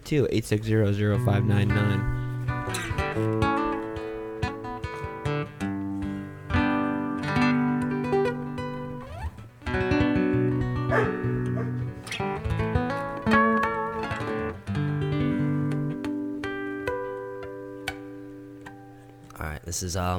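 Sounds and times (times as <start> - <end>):
speech: 0.1 - 3.4, 19.8 - 20.1
music with sustained tonal notes: 1.0 - 19.3
dog barking: 10.9 - 11.8.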